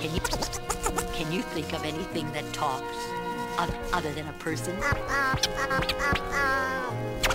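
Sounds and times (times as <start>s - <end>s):
bird giving nasal duck-like quacks: 0.2s - 1.3s, 4.8s - 7.3s
speech: 1.4s - 7.3s.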